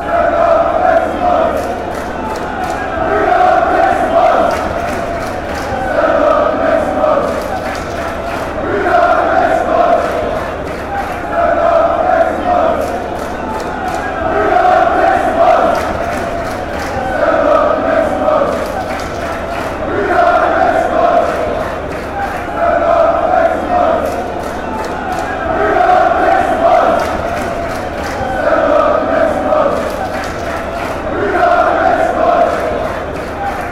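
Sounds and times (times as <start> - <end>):
crowd chanting: 0.0 - 33.7.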